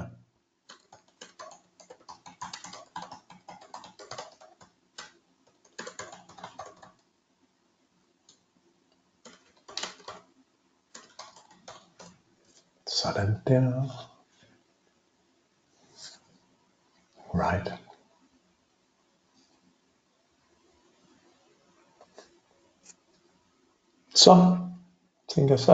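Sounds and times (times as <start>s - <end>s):
typing on a keyboard: 0.7s - 7.1s, 9.2s - 10.3s, 10.9s - 12.2s
speech: 13.0s - 14.1s, 24.2s - 24.6s, 25.4s - 25.7s.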